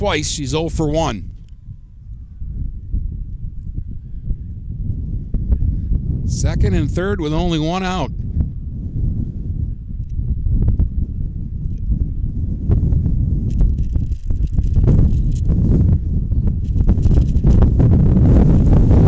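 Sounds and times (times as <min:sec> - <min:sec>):
speech: 0:00.0 - 0:01.3, 0:06.4 - 0:08.2
strong wind gusts buffeting the microphone: 0:00.0 - 0:19.0.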